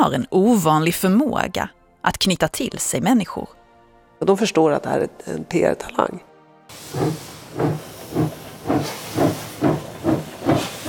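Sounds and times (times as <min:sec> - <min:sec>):
speech: 0:00.0 - 0:03.6, 0:04.2 - 0:06.3, 0:06.9 - 0:09.0
steam train chuffing as it pulls away from the platform in Zürich: 0:06.7 - 0:10.8.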